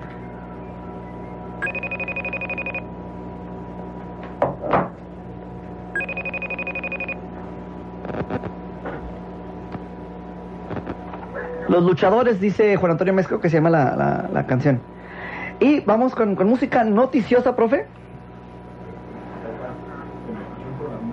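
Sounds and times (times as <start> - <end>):
telephone trilling electronic ringing as a call is placed: 1.6 - 2.9, 5.9 - 7.2
speech: 11.7 - 14.9, 15.6 - 18.0.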